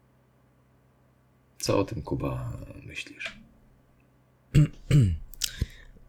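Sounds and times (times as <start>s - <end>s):
speech: 1.6s - 3.4s, 4.6s - 5.2s
person clearing throat: 4.5s - 6.0s.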